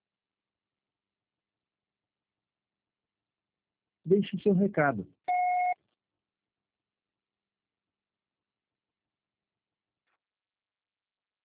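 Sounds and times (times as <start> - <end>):
speech: 4.1 - 5.2
voicemail beep: 5.3 - 5.8.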